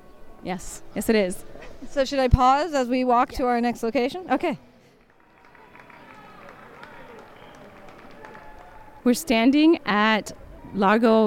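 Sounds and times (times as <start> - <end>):
speech: 0.4 - 4.7, 9.0 - 11.2
spectators clapping: 4.9 - 9.7
spectators cheering runners of the Rome Marathon at Largo Argentina, Rome: 4.9 - 11.2.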